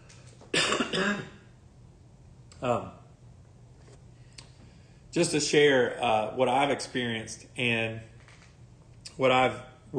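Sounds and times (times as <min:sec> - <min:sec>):
throat clearing from a scratchy throat: 0:00.5 - 0:01.4
speech: 0:01.0 - 0:01.4, 0:02.6 - 0:03.0, 0:05.2 - 0:08.1, 0:09.2 - 0:09.9.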